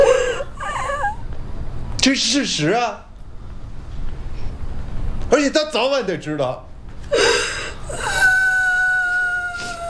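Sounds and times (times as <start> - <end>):
child crying and sobbing: 0.0 - 1.2, 7.1 - 9.8
speech: 2.0 - 3.0, 5.4 - 7.2.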